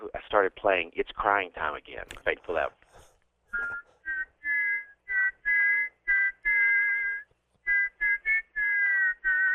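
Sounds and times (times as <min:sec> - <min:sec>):
speech: 0:00.3 - 0:02.8
person whistling imitating a steam radiator: 0:03.5 - 0:09.5.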